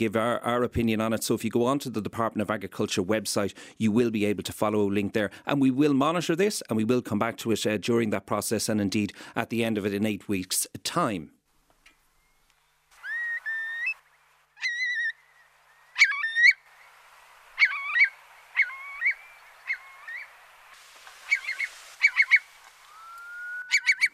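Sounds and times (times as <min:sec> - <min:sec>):
speech: 0:00.0 - 0:11.4
curlew calling: 0:11.9 - 0:24.1.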